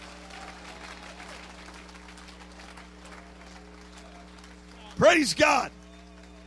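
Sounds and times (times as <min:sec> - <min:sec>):
church audience clapping: 0:00.0 - 0:06.4
speech: 0:05.0 - 0:05.8.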